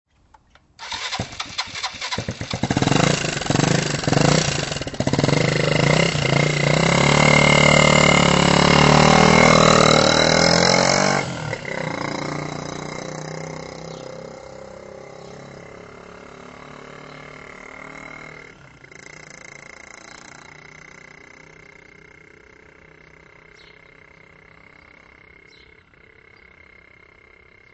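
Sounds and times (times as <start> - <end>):
motorcycle starting: 0.4 - 27.7.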